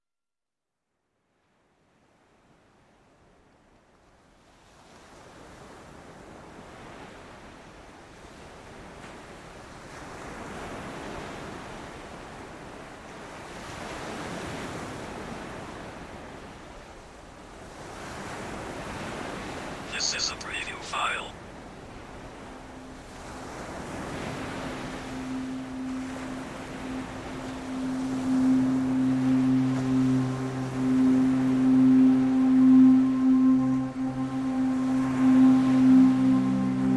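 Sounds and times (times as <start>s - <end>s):
sea waves: 4.4s - 36.9s
music: 24.6s - 36.9s.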